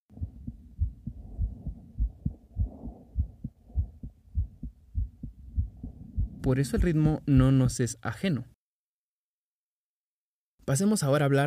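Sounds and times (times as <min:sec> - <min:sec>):
human heartbeat: 0:00.1 - 0:07.7
faint hum: 0:00.1 - 0:07.8
speech: 0:06.5 - 0:08.5, 0:10.7 - 0:11.4.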